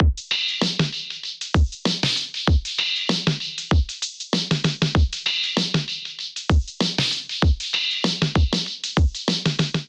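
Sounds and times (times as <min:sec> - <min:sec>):
basic drum kit beat at 97 bpm: 0:00.0 - 0:09.8.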